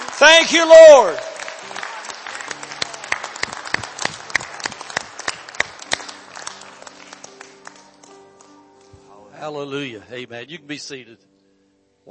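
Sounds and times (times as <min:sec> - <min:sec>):
crowd clapping hands in sustained applause: 0:00.0 - 0:08.6
speech: 0:00.2 - 0:01.3, 0:09.5 - 0:11.3.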